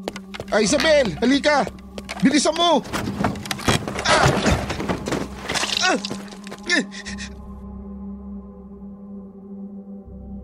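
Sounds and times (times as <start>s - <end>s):
speech: 0.0s - 3.2s, 5.9s - 7.3s
person's voice: 0.4s - 2.9s
man falling from ceiling crashing onto floor: 2.8s - 6.6s.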